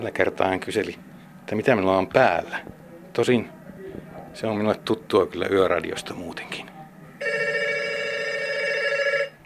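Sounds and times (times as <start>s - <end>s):
speech: 0.0s - 3.6s, 4.4s - 6.7s
telephone ringing with an electronic trill: 7.2s - 9.4s.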